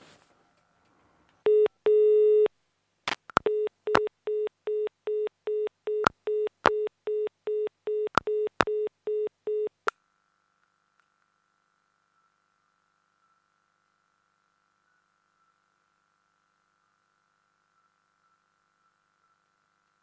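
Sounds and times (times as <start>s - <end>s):
telephone busy signal after a phone line drops: 1.5s - 2.5s, 3.4s - 9.8s
sharp telephone line clicks and pops: 3.1s - 4.1s, 6.0s - 6.8s, 8.0s - 8.9s.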